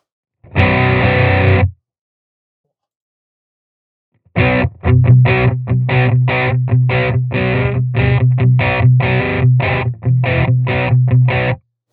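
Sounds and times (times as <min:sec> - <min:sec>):
electric guitar strummed through British Crunch distortion effect: 0:00.5 - 0:01.7, 0:04.4 - 0:11.6.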